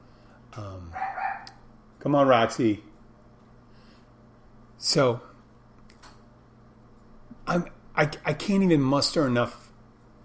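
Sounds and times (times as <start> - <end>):
female dog barking at a cat: 0.9 - 1.6
speech: 2.0 - 2.9, 4.8 - 5.3, 7.5 - 9.6.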